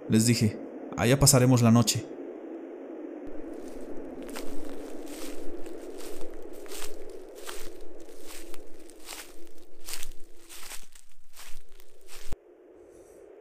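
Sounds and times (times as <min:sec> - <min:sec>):
speech: 0:00.1 - 0:02.2
footsteps crunching on leaf-littered forest ground: 0:03.3 - 0:12.4.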